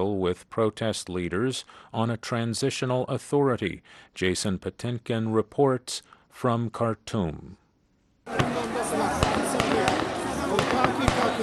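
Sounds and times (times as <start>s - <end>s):
speech: 0.0s - 7.6s
dense constant crowd din: 8.3s - 11.4s
gunfire: 9.2s - 11.4s.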